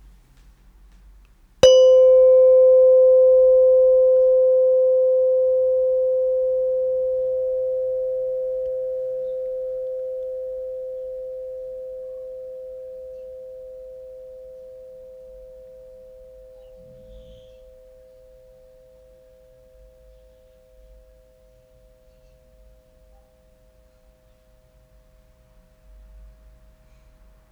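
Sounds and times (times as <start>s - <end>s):
meditation bell ringing: 1.6s - 18.5s.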